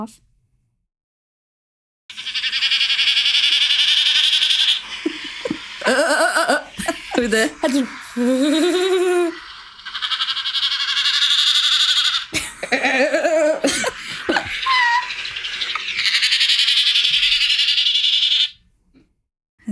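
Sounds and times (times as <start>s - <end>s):
speech: 0.0s - 0.3s, 5.9s - 9.4s
common snipe winnowing: 2.1s - 18.6s
people laughing: 4.8s - 9.4s, 12.3s - 15.2s.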